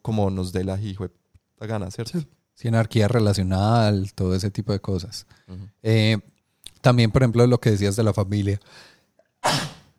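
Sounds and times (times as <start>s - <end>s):
speech: 0.0s - 9.7s
person sneezing: 9.4s - 9.9s.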